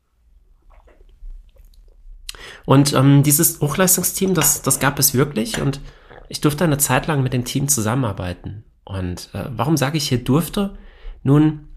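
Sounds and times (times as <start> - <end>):
speech: 2.6 - 11.7
sipping espresso: 3.4 - 7.2.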